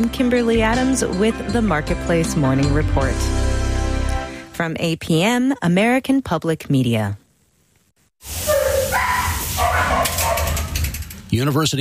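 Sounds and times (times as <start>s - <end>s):
speech: 0.0s - 3.5s, 4.6s - 7.2s, 8.2s - 8.5s, 11.3s - 11.7s
dogs barking, yipping and whining at an animal shelter: 8.3s - 11.0s.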